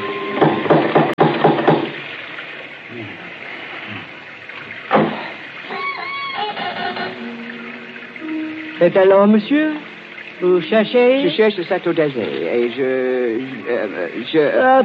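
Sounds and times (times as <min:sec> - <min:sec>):
sharp ringing knocks from a door knocker: 0:00.4 - 0:02.0
speech: 0:08.8 - 0:09.8, 0:10.4 - 0:14.8.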